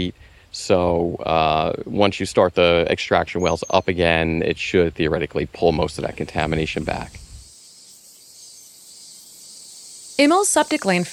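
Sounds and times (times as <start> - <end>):
speech: 0.0 - 7.2, 10.2 - 11.1
cicadas buzzing: 5.7 - 11.1.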